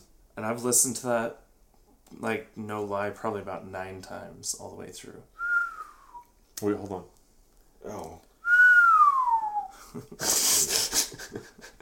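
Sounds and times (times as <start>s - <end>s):
speech: 0.4s - 1.4s, 2.1s - 5.3s, 6.6s - 7.2s, 7.8s - 8.3s, 9.9s - 10.6s
single clear whistle gliding downward in pitch: 8.4s - 9.7s.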